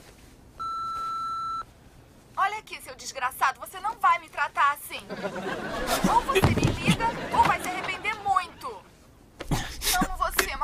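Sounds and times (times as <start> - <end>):
faint hiss: 0.0 - 10.6
answering machine beep: 0.6 - 1.6
speech: 3.0 - 7.4
laughter: 5.0 - 8.9.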